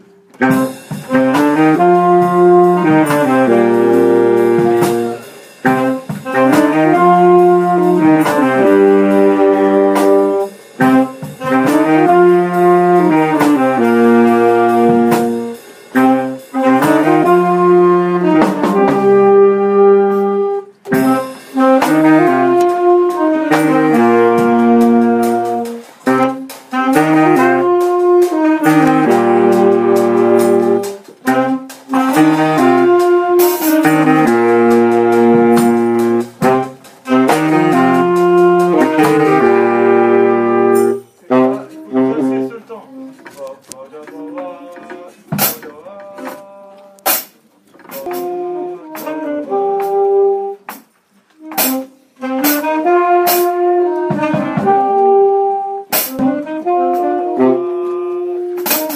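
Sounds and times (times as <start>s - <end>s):
brass band: 0.0s - 58.9s
saxophone: 0.0s - 58.9s.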